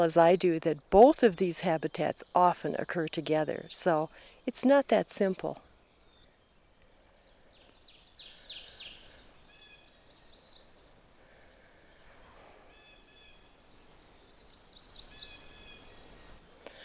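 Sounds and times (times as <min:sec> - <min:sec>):
speech: 0:00.0 - 0:05.7
Blackburnian warbler singing its very high thin song: 0:00.0 - 0:06.5, 0:07.2 - 0:16.4
quiet bird calls: 0:05.6 - 0:16.8.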